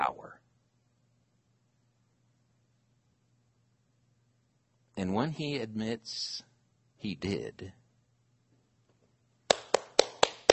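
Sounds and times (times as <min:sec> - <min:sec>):
speech: 0:05.0 - 0:07.8
single person clapping hands: 0:09.5 - 0:10.5.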